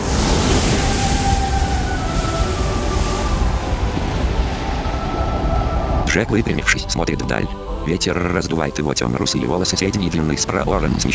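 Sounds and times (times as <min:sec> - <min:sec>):
ship's bow cutting through the sea churning foaming water: 0:00.0 - 0:07.8
low rumble beneath rushing surf: 0:00.0 - 0:11.1
speech: 0:06.1 - 0:11.1.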